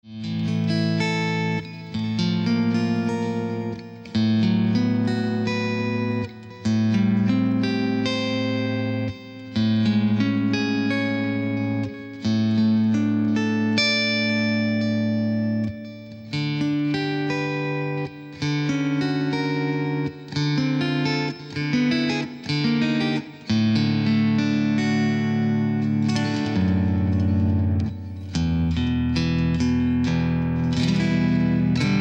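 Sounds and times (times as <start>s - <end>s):
metal clean amplifier tone on Cyber Deluxe: 0.1s - 31.9s.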